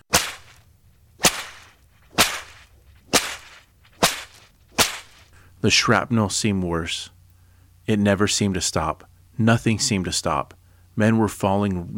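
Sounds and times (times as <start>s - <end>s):
whip cracks with hissing tail: 0.0s - 5.3s
speech: 5.6s - 7.2s, 7.9s - 11.9s.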